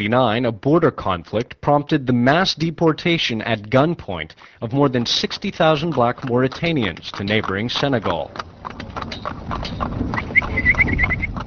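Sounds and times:
speech: 0.0 - 11.1
horse hooves pulling a horse-drawn wagon taxi in Dagana Senegal: 3.8 - 11.4
short high squeaky chirps: 10.2 - 11.4.

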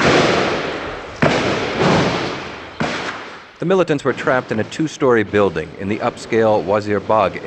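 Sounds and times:
gunshots: 0.0 - 6.2
outdoor noise: 0.0 - 7.4
speech: 3.6 - 7.4.

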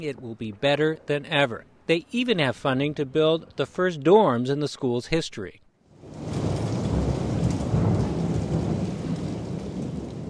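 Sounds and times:
speech: 0.0 - 5.6
deep rolling rumble of thunder in New Orleans: 5.9 - 10.2
heavy rain pouring in a thunderstorm in New Orleans: 5.9 - 10.2.

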